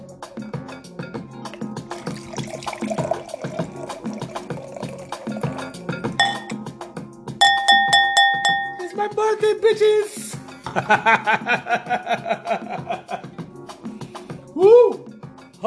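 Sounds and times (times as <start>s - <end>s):
wine being poured into a glass: 1.5s - 6.6s
bright ringing chime-like tone: 6.2s - 6.5s, 7.4s - 8.9s
speech: 9.6s - 10.2s, 10.8s - 12.7s
laughter: 10.7s - 13.3s.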